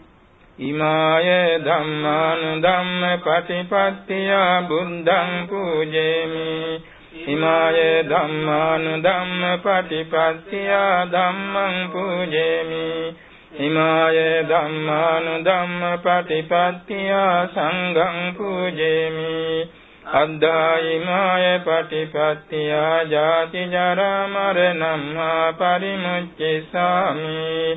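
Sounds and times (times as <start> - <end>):
evening liturgy chanting of merit dedication: 0.6 - 27.7.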